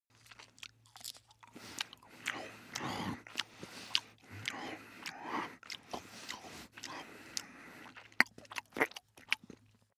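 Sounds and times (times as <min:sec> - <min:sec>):
dog eating: 0:00.2 - 0:09.7
dog breathing long: 0:01.5 - 0:08.0.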